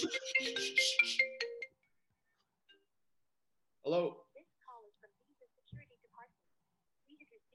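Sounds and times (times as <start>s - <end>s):
speech: 0.0s - 1.2s, 3.8s - 4.2s
phone ringtone melody: 0.0s - 1.9s.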